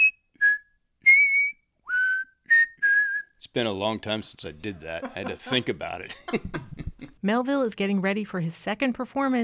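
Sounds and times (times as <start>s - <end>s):
man whistling an old cereal commercial jingle: 0.0s - 3.4s
speech: 3.6s - 9.4s
laughter: 4.4s - 7.2s.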